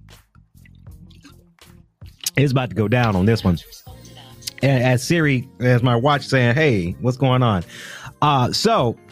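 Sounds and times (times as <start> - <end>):
gulping and sipping water: 0.6 - 1.4, 4.0 - 4.7
speech: 2.4 - 3.9, 4.6 - 9.0.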